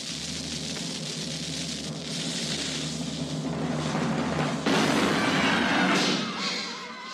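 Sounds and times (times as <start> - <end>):
steady rushing crackling noise: 0.0 - 5.9
cannon blast: 4.6 - 6.4.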